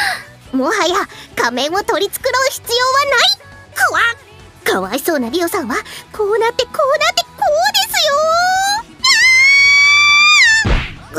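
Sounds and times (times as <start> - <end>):
speech: 0.5 - 8.6
high-pitched pained scream after being slapped: 9.0 - 10.7.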